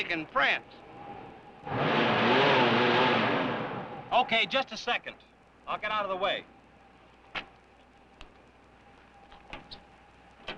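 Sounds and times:
speech: 0.0 - 0.8, 1.6 - 2.1, 4.1 - 6.5
car motor running on a car with fender cutting into the wheel: 0.0 - 4.4.

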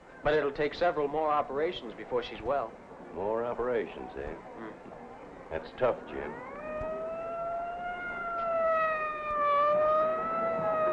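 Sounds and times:
speech: 0.2 - 6.5
fire engine siren wailing: 6.1 - 10.9.

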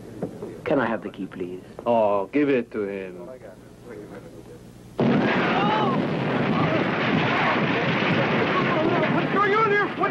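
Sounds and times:
speech: 0.2 - 3.6, 9.1 - 10.0
loud explosion below deck on a ship: 5.0 - 10.0
faint shouting voices: 5.2 - 10.0.

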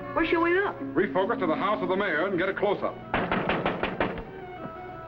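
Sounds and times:
speech: 0.2 - 3.2
knocking on the wooden door of a house in a Chinese village: 3.1 - 4.8.

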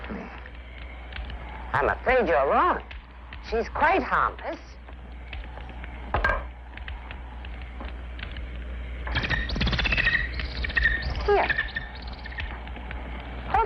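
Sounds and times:
low room hum: 0.0 - 13.6
speech: 1.7 - 4.7
bird chirping with high twittering calls: 9.1 - 12.6.

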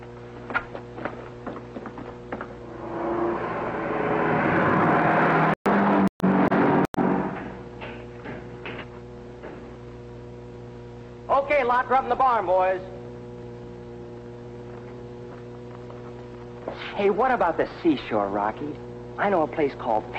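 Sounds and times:
car driving in, engine and tire noise: 2.5 - 7.5
speech: 11.5 - 12.9, 17.0 - 20.1.

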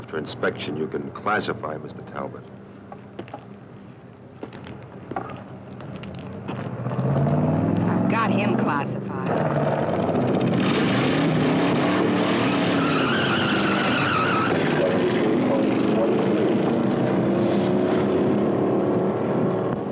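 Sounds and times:
road noise: 0.0 - 19.9
speech: 0.1 - 2.6
car engine roaring at high speed: 5.1 - 19.9
tire squeal: 10.6 - 16.2.

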